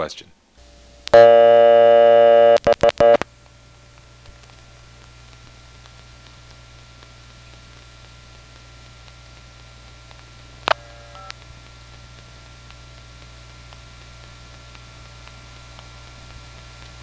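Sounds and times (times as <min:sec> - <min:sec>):
speech: 0:00.0 - 0:00.3, 0:01.2 - 0:01.6
telephone dial tone: 0:01.2 - 0:03.2
telephone dialing clicks: 0:02.5 - 0:03.3, 0:10.1 - 0:11.5.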